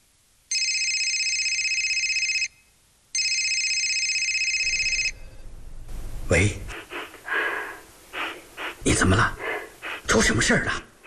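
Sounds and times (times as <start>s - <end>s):
faint low noise: 0.0s - 11.0s
loud high electronic telephone ringing: 0.5s - 2.5s, 3.2s - 5.3s
speech: 6.3s - 6.8s, 9.0s - 9.4s, 10.1s - 10.9s.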